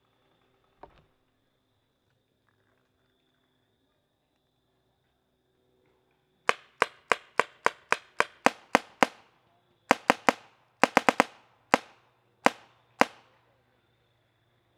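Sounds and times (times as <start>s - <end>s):
gunshots: 6.5s - 9.2s, 9.9s - 13.3s.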